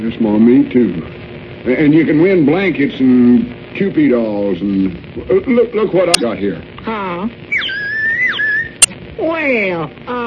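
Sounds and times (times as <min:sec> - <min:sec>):
speech: 0:00.0 - 0:07.5, 0:09.2 - 0:10.2
bird-call whistle imitating a meadowlark and a whippoorwill: 0:07.5 - 0:08.9.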